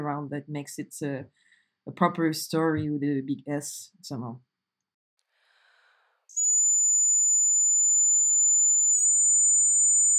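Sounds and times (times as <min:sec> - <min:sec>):
speech: 0:00.0 - 0:04.5
loud shrill whistled melody: 0:06.3 - 0:10.1.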